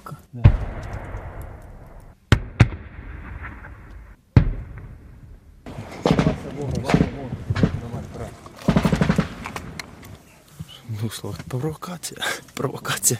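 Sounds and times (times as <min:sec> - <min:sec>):
sharp gunshots: 0:00.4 - 0:08.0, 0:08.6 - 0:09.8
speech: 0:11.1 - 0:13.1.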